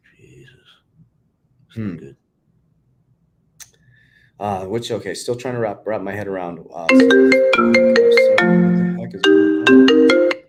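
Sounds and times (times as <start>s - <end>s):
speech: 1.8s - 2.2s, 4.4s - 10.4s
phone ringtone playing a bright plucked melody: 6.9s - 10.4s.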